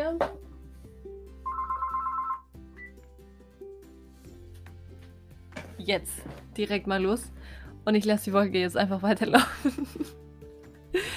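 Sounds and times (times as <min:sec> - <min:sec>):
telephone ringing in a warbling burst: 0:01.4 - 0:02.9
speech: 0:05.8 - 0:10.2
laughter: 0:09.4 - 0:10.2.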